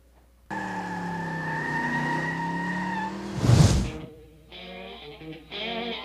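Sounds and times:
1970 Chevy pickup truck engine revving during street racing: 0.5s - 4.1s
tires screeching: 0.5s - 4.1s.

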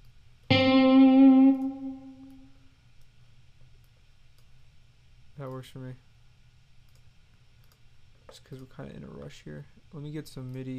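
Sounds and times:
electric guitar note with chorus and atmosphere effects: 0.5s - 2.5s
speech: 5.6s - 6.1s, 8.3s - 10.7s.

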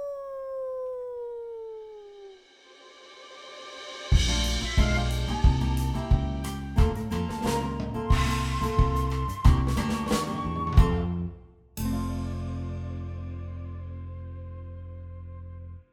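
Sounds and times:
wolf howling: 0.0s - 2.5s
lively music track with punchy beats: 4.1s - 11.0s.

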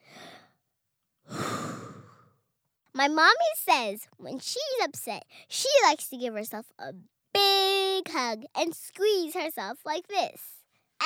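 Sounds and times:
person taking deep calming breaths through the mouth: 0.0s - 0.6s, 1.3s - 2.4s
speech: 3.0s - 7.2s, 8.0s - 11.0s.

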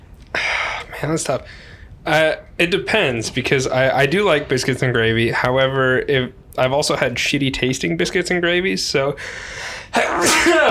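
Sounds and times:
casual conversation about food: 0.7s - 10.6s
speech: 1.0s - 10.6s
person sneezing: 10.0s - 10.6s.

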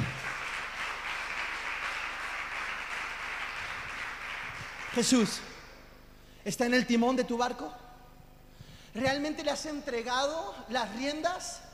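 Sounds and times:
large crowd applauding: 0.0s - 5.4s
speech: 5.0s - 5.5s, 6.4s - 7.8s, 9.0s - 11.7s.

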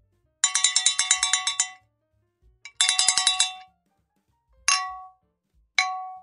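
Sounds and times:
tin can shaken hard, clanging: 0.4s - 1.8s, 2.7s - 3.6s, 4.7s - 5.1s.

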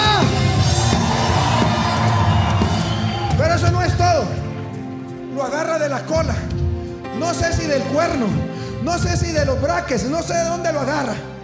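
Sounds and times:
whoops and yells: 0.0s - 3.7s
crowd at a sermon shouting and cheering at the preacher's call: 0.0s - 4.8s
speech: 5.9s - 6.6s, 7.2s - 11.3s.

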